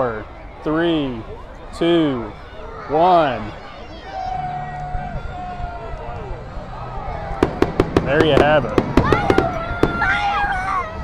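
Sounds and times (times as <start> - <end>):
speech: 0.0 - 3.6, 8.1 - 8.9
crowd murmuring: 0.0 - 11.0
fireworks bangs: 7.4 - 10.4.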